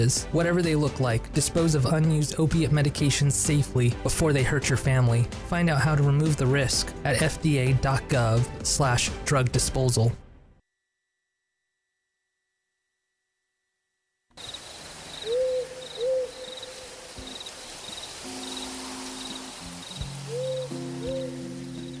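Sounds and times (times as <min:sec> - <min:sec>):
speech: 0:00.0 - 0:10.2
insects chirping: 0:14.3 - 0:21.9
burrowing owl giving soft paired coo-like hoots: 0:14.4 - 0:21.9.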